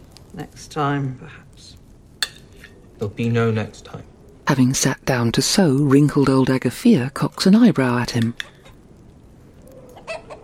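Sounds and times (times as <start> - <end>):
speech: 0.4 - 1.8, 3.0 - 8.5
perched chicken clucking: 9.8 - 10.4.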